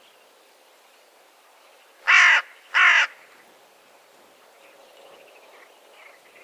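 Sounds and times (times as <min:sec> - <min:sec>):
carrion crow giving harsh raspy caws: 0:02.0 - 0:03.2.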